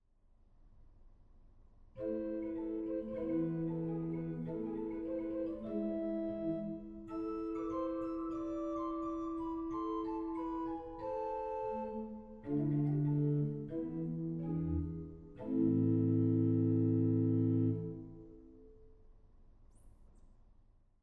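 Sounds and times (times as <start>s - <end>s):
organ flute stop: 2.0s - 18.5s.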